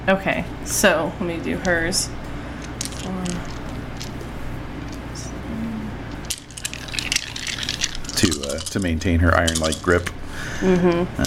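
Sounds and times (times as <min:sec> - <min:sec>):
speech: 0:00.0 - 0:02.2, 0:03.0 - 0:03.5, 0:08.2 - 0:11.2
low steady hum: 0:00.0 - 0:11.2
handful of dice rolled onto a hard surface: 0:02.6 - 0:04.2, 0:06.2 - 0:10.1.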